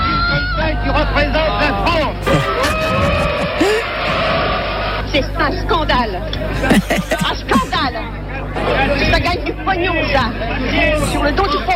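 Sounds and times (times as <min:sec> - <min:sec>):
dense loud babble of an agitated audience after a film screening: 0:00.1 - 0:04.5, 0:05.1 - 0:11.7
laughter: 0:02.0 - 0:04.5, 0:06.5 - 0:07.9.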